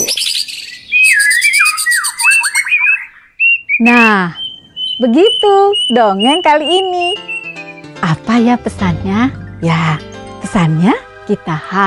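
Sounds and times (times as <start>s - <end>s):
birds singing in chorus of squawks, chirps and sliding whistles: 0.0s - 8.2s
speech: 0.1s - 0.6s, 3.8s - 4.4s, 5.0s - 7.3s, 8.0s - 11.8s.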